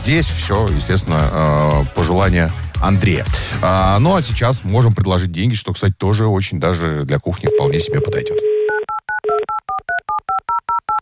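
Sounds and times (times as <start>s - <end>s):
speech: 0.0s - 8.5s
touch-tone beeps of a telephone number being dialed: 7.5s - 11.0s.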